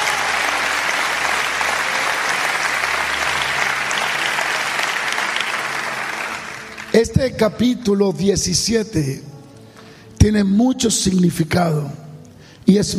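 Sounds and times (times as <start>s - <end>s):
church audience applauding during a sermon: 0.0s - 7.2s
speech: 7.0s - 9.3s, 10.2s - 12.0s, 12.7s - 12.9s.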